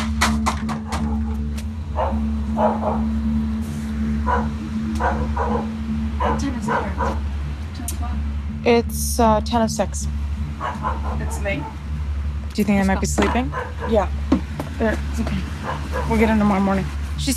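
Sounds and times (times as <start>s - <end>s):
steady low droning hum: 0.0s - 17.3s
dog barking in sharp irregular bursts with quick yips: 0.8s - 1.4s, 2.0s - 3.2s, 4.2s - 7.2s, 10.6s - 11.8s, 13.5s - 14.2s, 15.6s - 16.3s
speech: 8.6s - 11.8s, 12.6s - 14.2s, 14.8s - 17.3s.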